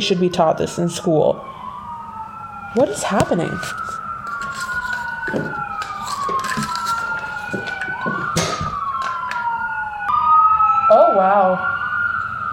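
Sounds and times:
speech: 0:00.0 - 0:01.6, 0:02.8 - 0:04.0, 0:05.3 - 0:05.6, 0:10.9 - 0:11.7
fire truck and ambulance sirens wailing: 0:00.0 - 0:12.5
traffic rumble: 0:00.0 - 0:12.5.

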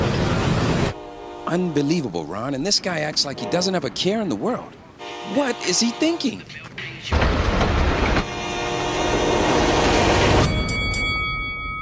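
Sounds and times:
train wheels rumbling on railroad tracks: 0:00.0 - 0:11.1
train horn: 0:00.9 - 0:02.1, 0:05.0 - 0:06.4, 0:08.2 - 0:10.5
speech: 0:01.5 - 0:07.3.

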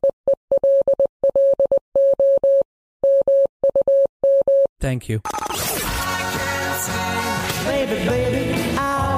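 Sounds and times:
Morse code beeps: 0:00.0 - 0:04.7
speech: 0:04.8 - 0:06.0, 0:06.8 - 0:09.0.

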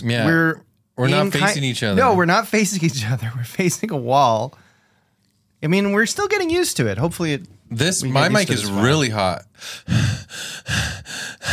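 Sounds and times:
speech: 0:00.0 - 0:04.6, 0:05.6 - 0:11.5
loud breathing: 0:04.6 - 0:05.2, 0:09.6 - 0:11.5.

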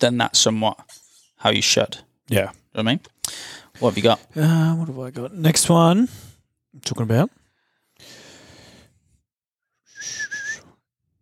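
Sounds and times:
speech: 0:00.0 - 0:07.4
person whistling into a microphone: 0:09.8 - 0:10.9.

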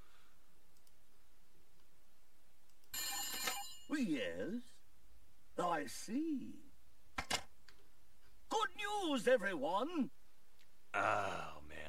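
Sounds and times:
loud telephone bell ringing: 0:03.0 - 0:03.9
speech: 0:04.0 - 0:04.8, 0:05.6 - 0:06.7, 0:08.8 - 0:10.2, 0:11.0 - 0:11.8.

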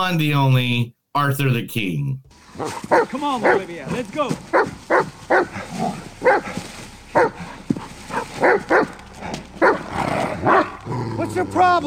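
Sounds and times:
speech: 0:00.0 - 0:06.6, 0:11.4 - 0:11.8
dog barking: 0:02.6 - 0:10.9.

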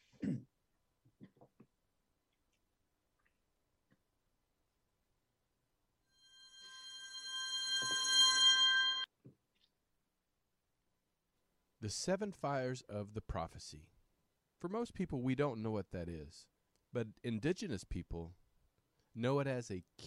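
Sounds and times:
short cough-like throat clearing: 0:00.0 - 0:00.6
loud steady bright tone: 0:06.2 - 0:09.1
speech: 0:11.8 - 0:13.9, 0:14.6 - 0:18.4, 0:19.2 - 0:20.0.

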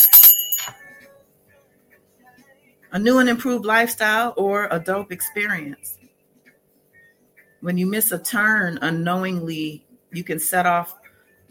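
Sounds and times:
bright bell ringing: 0:00.0 - 0:00.8
speech: 0:02.9 - 0:06.0, 0:07.6 - 0:11.0.

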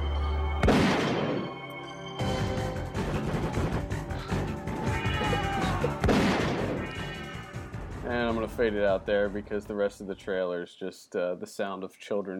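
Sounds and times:
dense music: 0:00.0 - 0:10.4
canned 12-gauge shotgun blasts: 0:00.6 - 0:01.5, 0:06.0 - 0:06.8
speech: 0:08.1 - 0:12.3.

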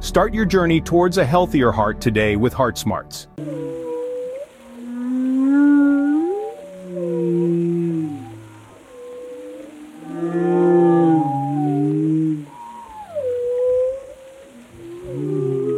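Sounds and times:
speech: 0:00.1 - 0:03.8
whale moans and whistles: 0:03.4 - 0:15.7.

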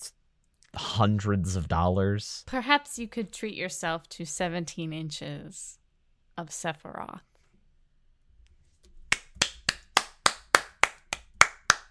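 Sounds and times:
speech: 0:00.8 - 0:05.8, 0:06.4 - 0:07.3
single person clapping hands: 0:09.1 - 0:11.8.

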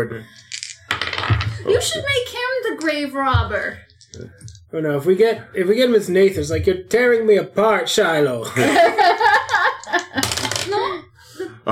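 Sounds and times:
speech: 0:00.0 - 0:00.5, 0:01.6 - 0:11.0
dice tumbling across a hard surface: 0:00.3 - 0:01.6, 0:03.9 - 0:04.6, 0:09.5 - 0:10.8
laughter: 0:08.5 - 0:10.2.

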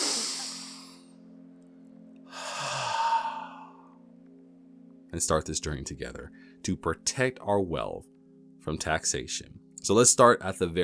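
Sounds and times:
deep breaths: 0:00.0 - 0:01.0, 0:02.3 - 0:03.8
speech: 0:05.1 - 0:10.8.

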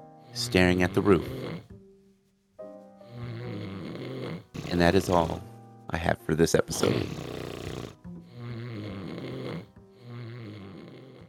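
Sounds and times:
deep rumbling snoring: 0:00.3 - 0:01.7, 0:03.1 - 0:05.5, 0:06.7 - 0:11.2
speech: 0:00.4 - 0:01.4, 0:04.7 - 0:07.2.

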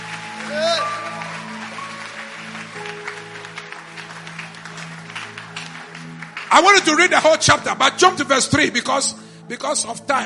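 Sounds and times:
church audience clapping as a praise offering: 0:00.0 - 0:07.9
speech: 0:06.5 - 0:10.2.

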